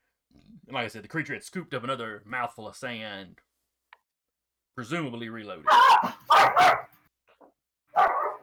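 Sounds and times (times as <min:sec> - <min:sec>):
speech: 0:00.7 - 0:03.5, 0:04.8 - 0:06.9
dog barking: 0:05.7 - 0:07.0, 0:07.9 - 0:08.4.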